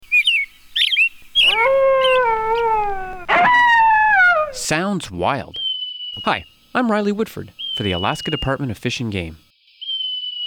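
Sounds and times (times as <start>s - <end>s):
hoary marmot whistle: 0.1s - 4.7s
speech: 4.7s - 9.4s.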